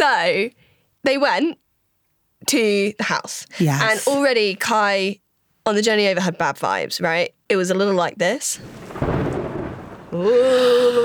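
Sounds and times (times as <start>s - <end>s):
speech: 0.0s - 1.6s, 2.4s - 9.0s, 10.1s - 11.0s
loud drawn-out vocal tone: 3.6s - 4.2s
low thunder rumble: 8.6s - 11.0s
steady rain: 8.6s - 11.0s.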